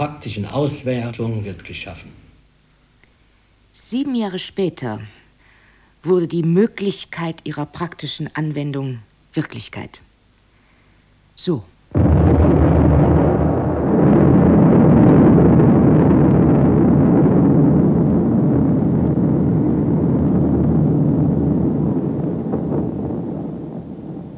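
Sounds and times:
speech: 0:00.0 - 0:02.2, 0:03.8 - 0:05.2, 0:06.0 - 0:10.0, 0:11.4 - 0:12.1
atomic bomb explosion roar: 0:11.9 - 0:24.3.

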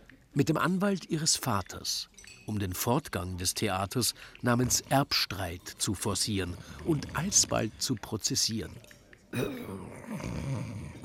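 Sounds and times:
speech: 0:00.4 - 0:10.9
vicar snoring while dozing on a corner bench after a soup meal: 0:09.4 - 0:11.0.

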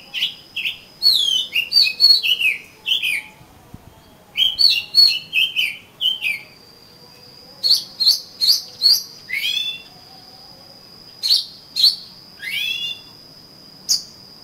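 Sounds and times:
Oriental magpie-robin singing whistled notes and sharp chips: 0:00.0 - 0:03.4, 0:04.3 - 0:06.6, 0:07.6 - 0:09.9, 0:11.2 - 0:13.1.

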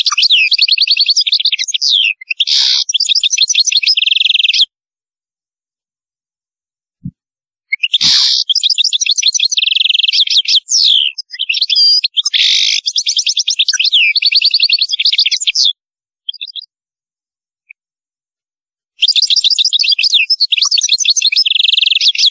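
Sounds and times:
European goldfinch song: 0:00.0 - 0:04.7, 0:07.7 - 0:16.7, 0:19.0 - 0:22.2.

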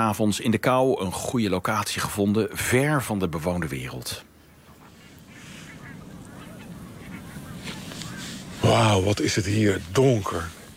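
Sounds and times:
speech: 0:00.0 - 0:04.3, 0:08.6 - 0:10.6
dense murmur of birds: 0:00.0 - 0:10.7
waterfowl calling at a bird-spotting site at night: 0:02.7 - 0:10.7
geese honking at a bird-spotting site at night: 0:03.3 - 0:10.7.

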